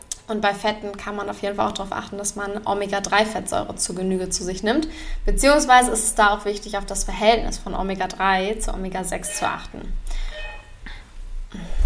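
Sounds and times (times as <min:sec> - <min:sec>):
speech: 0:00.3 - 0:10.2
doorbell ringing: 0:10.3 - 0:10.8.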